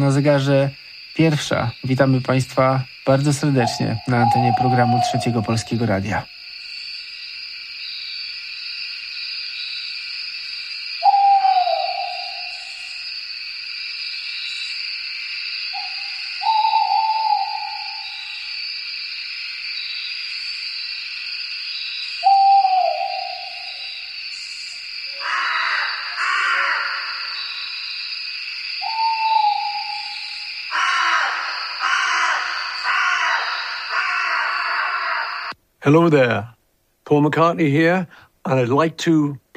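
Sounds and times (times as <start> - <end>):
speech: 0.1 - 6.4, 35.9 - 39.5
owl hooting: 3.2 - 6.3, 11.0 - 13.1, 15.7 - 18.6, 22.1 - 27.9, 28.8 - 35.6.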